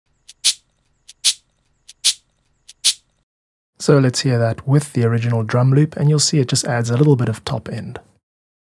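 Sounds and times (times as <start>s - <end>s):
cabasa of ribbed metal with beads played in a steady rhythm: 0.3s - 3.0s
speech: 3.9s - 8.1s.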